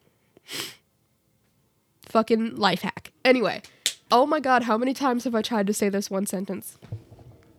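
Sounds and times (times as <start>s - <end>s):
sneeze: 0.5s - 0.8s
speech: 2.1s - 7.0s.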